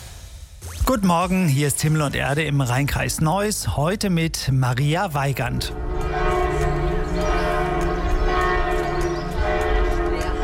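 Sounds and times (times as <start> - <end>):
speech: 0.9 - 6.3
Knechtsteden monastery church bells pealing near Dormagen Germany: 5.4 - 10.4.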